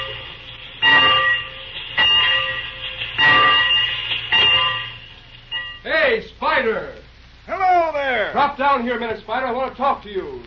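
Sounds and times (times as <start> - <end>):
locomotive bell clanging: 0.0 - 5.9
speech: 6.6 - 7.0, 8.3 - 10.4.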